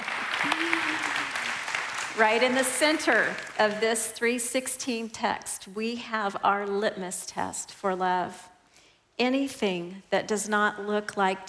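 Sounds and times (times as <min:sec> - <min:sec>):
voice rising above clapping: 0:00.0 - 0:03.6
audience applause: 0:00.0 - 0:03.7
speech: 0:02.2 - 0:08.5, 0:09.2 - 0:11.4.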